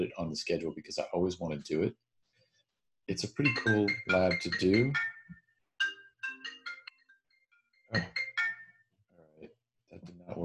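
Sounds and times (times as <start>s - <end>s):
speech: 0.0s - 2.0s, 3.1s - 5.1s, 7.9s - 8.2s, 10.0s - 10.4s
incoming phone call ringtone chiming on a tablet linked to a phone: 3.4s - 8.9s.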